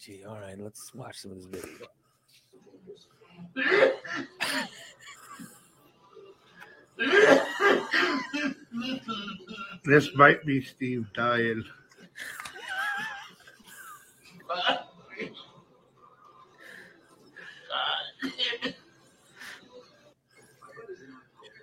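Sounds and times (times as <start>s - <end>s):
speech: 0.0s - 5.0s, 7.0s - 12.4s
laughter: 3.6s - 5.9s, 11.9s - 15.5s
man coughing heavily and harshly: 7.0s - 9.2s.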